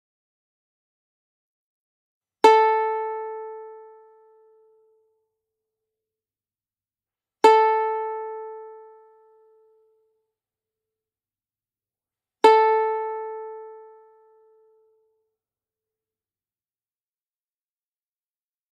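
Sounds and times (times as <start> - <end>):
ukulele string sound: 2.4 - 5.1, 7.4 - 10.1, 12.4 - 15.1.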